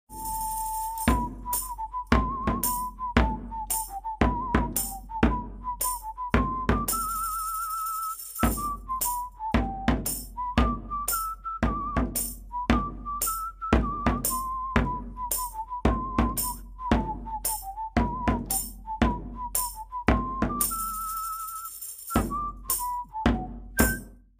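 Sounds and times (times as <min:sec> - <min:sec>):
drum playing a shanty: 0:00.1 - 0:24.2.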